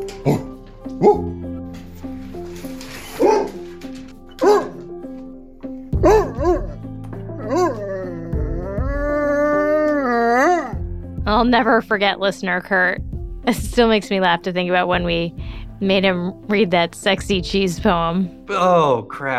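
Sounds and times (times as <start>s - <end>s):
dogs howling: 0.1s - 1.3s, 6.0s - 10.8s
dogs barking: 0.1s - 1.4s, 3.1s - 3.6s, 4.3s - 4.9s, 6.0s - 9.2s
speech: 0.2s - 0.4s, 1.0s - 1.5s, 11.5s - 19.3s.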